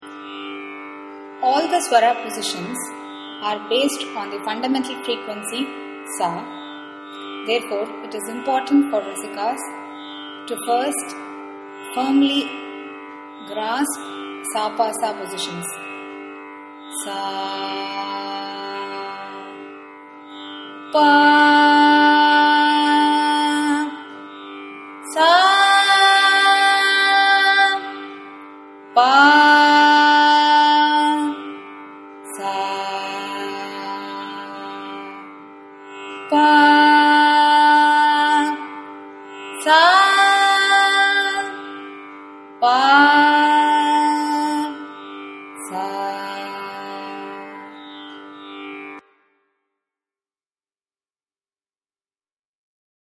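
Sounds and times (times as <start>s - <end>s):
carnatic music: 0.0s - 49.6s.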